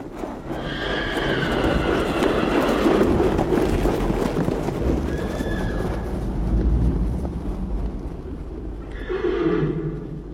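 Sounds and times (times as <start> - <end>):
herd of horses galloping hoofbeats: 0.0 - 10.3
horses whinnying and neighing: 0.3 - 6.2, 8.8 - 10.3.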